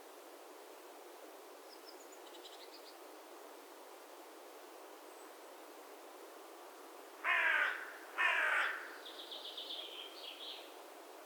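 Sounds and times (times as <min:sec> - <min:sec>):
faint background noise: 0:00.0 - 0:11.2
carrion crow Corvus corone cawing: 0:07.2 - 0:09.0.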